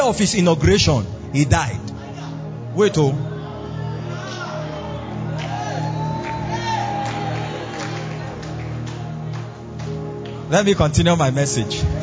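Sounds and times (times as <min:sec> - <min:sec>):
speech: 0:00.0 - 0:01.9, 0:02.8 - 0:03.3, 0:10.5 - 0:12.0
scattered whoops and cries from the crowd: 0:03.3 - 0:08.3
large audience shouting together: 0:03.3 - 0:08.4.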